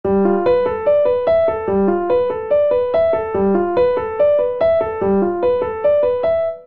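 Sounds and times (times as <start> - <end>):
grand piano modal ostinato in G Mixolydian: 0.0 - 6.6.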